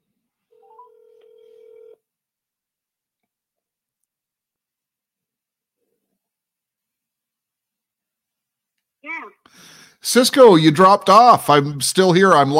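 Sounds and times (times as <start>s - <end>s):
buzzing ringback tone of an outgoing phone call on speakerphone: 0.6s - 2.0s
speech: 9.1s - 12.5s.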